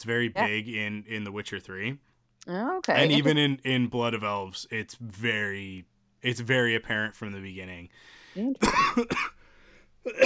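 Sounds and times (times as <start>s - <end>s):
speech: 0.0s - 9.4s, 10.0s - 10.2s
brief voiced vocal sounds: 0.2s - 0.7s, 2.8s - 3.4s
person coughing harshly: 8.6s - 9.4s, 10.0s - 10.2s.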